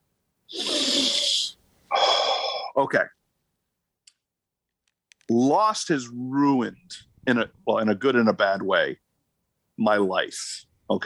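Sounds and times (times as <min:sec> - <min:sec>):
person taking a loud airy breath: 0:00.5 - 0:02.5
speech: 0:02.8 - 0:03.2, 0:05.3 - 0:09.0, 0:09.8 - 0:11.0.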